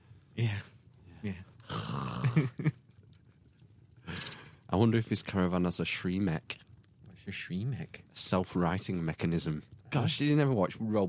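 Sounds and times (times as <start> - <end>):
speech: 0.4 - 1.5, 2.3 - 2.8, 4.8 - 11.0
voice imitating heavy rasping mouth breathing: 1.6 - 2.4.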